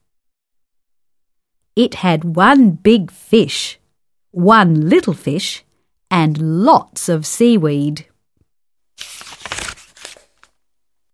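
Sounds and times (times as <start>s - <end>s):
speech: 1.8s - 3.8s, 4.4s - 8.1s
thin tissue paper being torn for a craft project: 9.0s - 10.5s.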